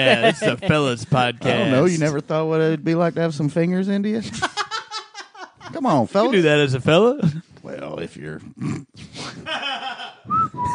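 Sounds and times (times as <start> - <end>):
laughter: 0.0 - 1.7, 4.2 - 6.0, 9.4 - 10.4
speech: 0.0 - 4.6, 5.7 - 10.7
finger whistles: 10.3 - 10.7.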